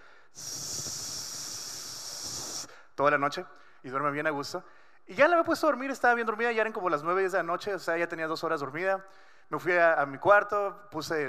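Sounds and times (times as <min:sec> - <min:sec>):
person making a breathy shhh hiss imitating pink white noise: 0:00.0 - 0:03.0
speech: 0:03.0 - 0:11.2.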